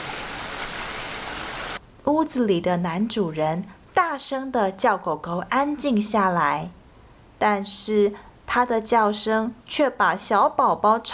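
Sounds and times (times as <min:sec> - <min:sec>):
steady rain: 0:00.0 - 0:01.8
speech: 0:02.0 - 0:06.8, 0:07.4 - 0:11.1.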